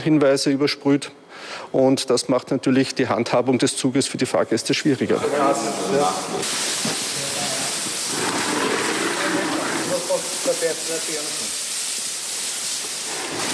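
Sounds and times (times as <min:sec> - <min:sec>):
speech: 0:00.0 - 0:07.0, 0:10.7 - 0:11.4
hoses spraying water washing a train: 0:05.2 - 0:13.5.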